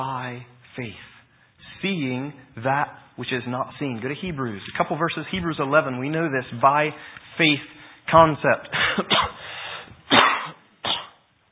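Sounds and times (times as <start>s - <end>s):
speech: 0.0s - 1.1s, 1.8s - 9.5s
harsh breathy coughs from a lingering cough: 8.7s - 11.2s.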